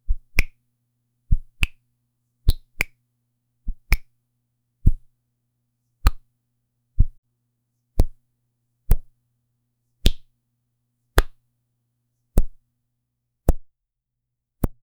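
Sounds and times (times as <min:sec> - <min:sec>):
finger flicks: 0:00.1 - 0:00.6, 0:01.3 - 0:01.8, 0:02.5 - 0:03.0, 0:03.7 - 0:04.1, 0:06.0 - 0:06.3, 0:08.0 - 0:08.2, 0:08.9 - 0:09.1, 0:10.0 - 0:10.3, 0:11.2 - 0:11.4, 0:12.4 - 0:12.6.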